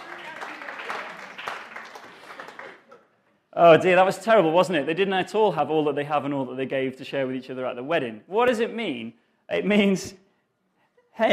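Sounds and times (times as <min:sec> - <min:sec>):
audience applause: 0:00.0 - 0:03.1
speech: 0:03.6 - 0:10.2, 0:11.2 - 0:11.3.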